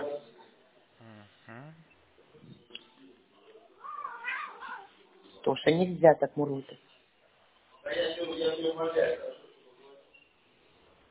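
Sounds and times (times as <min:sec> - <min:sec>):
domestic cat vocalizing: 0:03.8 - 0:05.0
speech: 0:05.4 - 0:06.9, 0:08.7 - 0:09.3.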